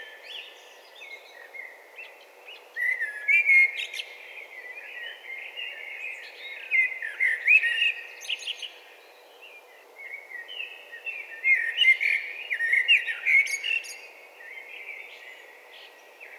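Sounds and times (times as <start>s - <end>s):
Eurasian blackbird (Turdus merula) singing: 0.0s - 16.3s.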